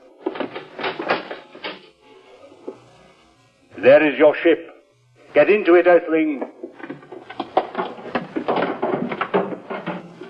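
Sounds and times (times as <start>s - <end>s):
heavy door opening with grinding whirring mechanical bursts: 0.0s - 2.0s, 6.5s - 10.2s
speech: 3.8s - 4.7s, 5.3s - 6.5s.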